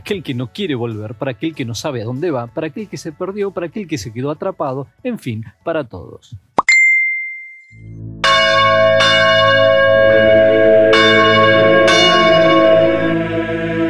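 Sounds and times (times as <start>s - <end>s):
speech: 0.1s - 6.5s
small bright ding: 6.6s - 7.8s
abbey church bells ringing: 8.2s - 13.8s.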